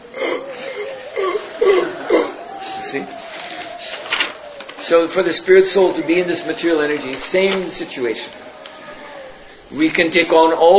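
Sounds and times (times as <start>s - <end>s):
voice imitating a fish gasping on land: 0.0s - 2.4s
speech: 2.9s - 3.2s, 4.9s - 8.4s, 9.7s - 10.7s.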